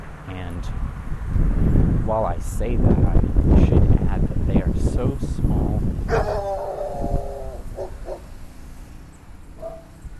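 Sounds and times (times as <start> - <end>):
speech: 0.6 - 1.0, 2.1 - 7.3
dog barking: 6.1 - 6.8, 7.8 - 8.2, 9.6 - 10.0.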